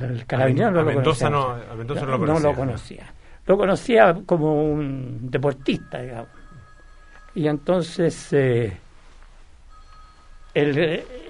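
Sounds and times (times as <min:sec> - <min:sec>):
speech: 0:00.0 - 0:06.4, 0:07.4 - 0:08.8, 0:10.6 - 0:11.2
mobile phone ringing with warbling electronic tone: 0:05.5 - 0:08.6, 0:09.7 - 0:11.2.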